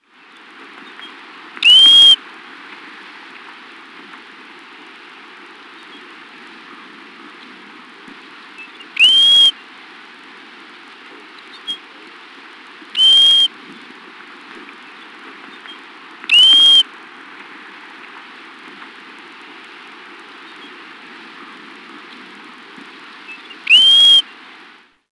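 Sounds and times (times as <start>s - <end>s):
Pacific golden plover: 1.6s - 2.2s, 8.6s - 9.6s, 13.0s - 13.5s, 16.2s - 16.9s, 23.3s - 24.2s.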